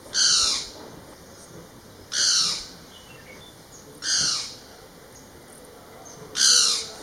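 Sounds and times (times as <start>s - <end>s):
Great Barbet calls at Sarangkot in Nepal: 0.1s - 0.8s, 4.0s - 4.6s, 6.4s - 7.0s.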